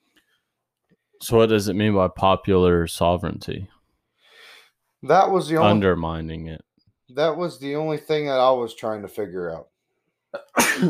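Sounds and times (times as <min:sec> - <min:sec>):
speech: 0:01.2 - 0:03.8, 0:05.0 - 0:09.7, 0:10.3 - 0:10.8
person sneezing: 0:10.4 - 0:10.8.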